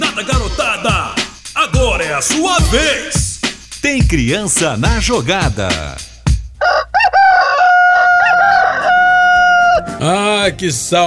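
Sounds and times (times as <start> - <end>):
speech: 0.2 - 1.1, 2.1 - 3.2, 3.8 - 6.1, 10.0 - 11.0
rooster crowing: 6.6 - 10.0.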